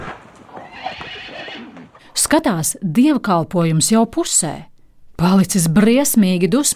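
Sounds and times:
horse hooves clip-clopping at an old church: 0:00.0 - 0:02.0
horse neighing at an old church: 0:00.0 - 0:02.1
speech: 0:02.3 - 0:06.7.

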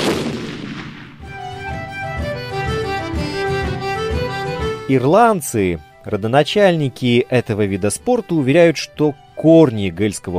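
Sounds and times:
loud cannon shot: 0:00.0 - 0:01.2
steady music with a plodding beat: 0:01.3 - 0:04.9
speech: 0:04.9 - 0:10.3.

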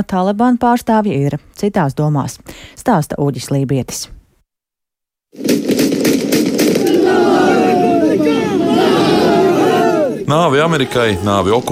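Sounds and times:
speech: 0:00.0 - 0:04.2, 0:05.3 - 0:06.2, 0:10.3 - 0:11.6
rapid bursts of celebratory gunfire: 0:05.4 - 0:09.7
large crowd shouting and chanting slogans: 0:06.7 - 0:11.6.

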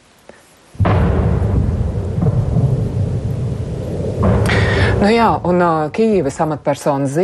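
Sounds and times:
air defence fire overhead: 0:00.8 - 0:06.3
missile explosions overhead: 0:00.8 - 0:06.8
speech: 0:05.0 - 0:07.2.

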